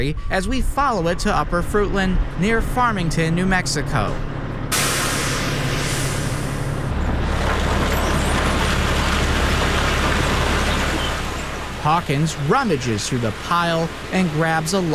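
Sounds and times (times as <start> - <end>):
speech: 0.0 - 4.4, 11.8 - 14.9
20-ton coal truck engine rumbling: 0.0 - 14.9
broadband road noise: 0.0 - 14.9
truck air brake hiss: 4.7 - 6.7.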